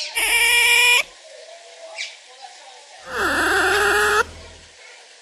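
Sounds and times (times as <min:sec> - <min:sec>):
whale calls: 0:00.2 - 0:01.1, 0:03.1 - 0:04.7.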